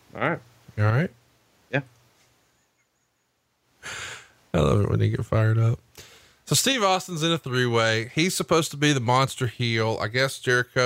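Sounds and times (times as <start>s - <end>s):
speech: 0.1s - 2.0s, 4.5s - 5.8s, 6.5s - 10.8s
deep breath: 3.8s - 4.4s, 5.9s - 6.4s.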